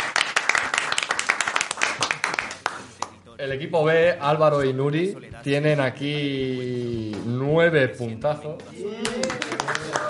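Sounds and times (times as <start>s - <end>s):
audience applause for a quiz contest team at a Christmas special: 0.0s - 2.8s, 9.0s - 10.0s
speech: 3.4s - 10.0s.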